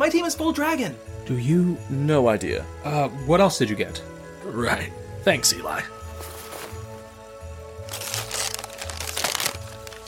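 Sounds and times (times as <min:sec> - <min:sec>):
speech: 0:00.0 - 0:06.0
gift wrapping paper crinkling and tearing as presents are opened: 0:07.8 - 0:10.0.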